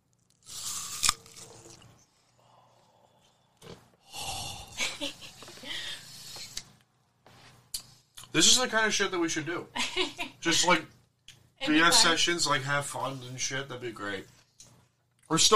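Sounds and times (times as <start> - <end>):
crunching bites and chewing of an apple: 0.3 - 2.0
speech: 8.4 - 11.0, 11.6 - 14.4, 15.3 - 15.5.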